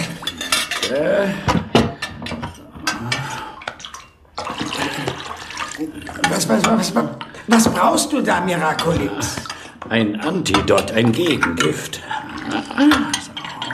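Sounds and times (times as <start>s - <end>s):
vessels and water container clinking and clattering while handled: 0.0s - 13.7s
water sloshing in a container: 0.0s - 13.7s
speech: 0.9s - 1.6s, 5.8s - 13.2s
short water splash: 3.3s - 6.4s.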